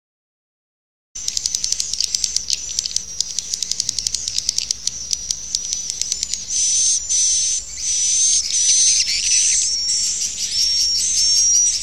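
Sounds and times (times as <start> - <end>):
swiftlet dry clicks: 1.2 - 8.0
swiftlet buzzy chirping: 1.2 - 11.8.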